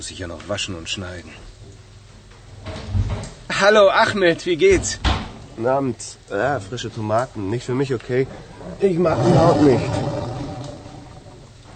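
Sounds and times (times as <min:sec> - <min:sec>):
speech: 0:00.0 - 0:01.5, 0:02.6 - 0:10.3
stomach growling from hunger: 0:08.3 - 0:11.7.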